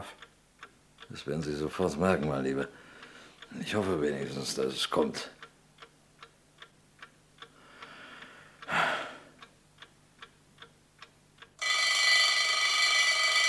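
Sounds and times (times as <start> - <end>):
clock ticking: 0.0 - 8.7, 9.3 - 13.4
speech: 1.1 - 2.9, 3.5 - 5.4
soft breath: 2.7 - 3.5, 7.5 - 9.5
alarm clock ringing: 11.6 - 13.4.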